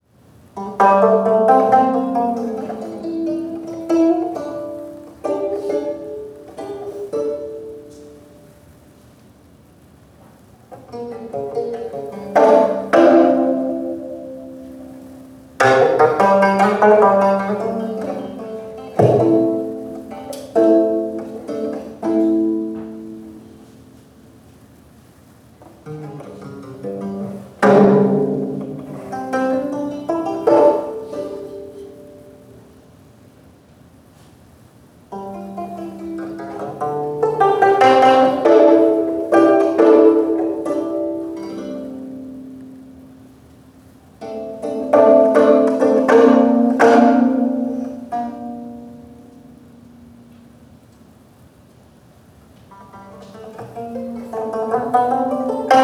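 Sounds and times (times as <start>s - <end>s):
gayageum playing: 0.0s - 55.8s.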